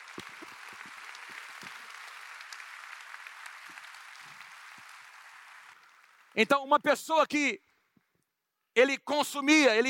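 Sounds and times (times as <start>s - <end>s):
audience applause: 0.0s - 6.6s
speech: 6.4s - 7.6s, 8.8s - 9.8s.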